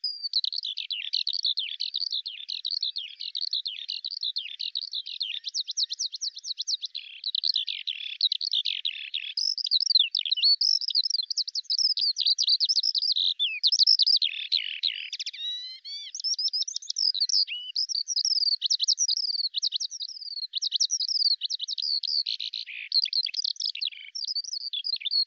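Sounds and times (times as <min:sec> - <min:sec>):
bird song of high varied chirps, twittering whistles and buzzy tones: 0:00.0 - 0:25.2.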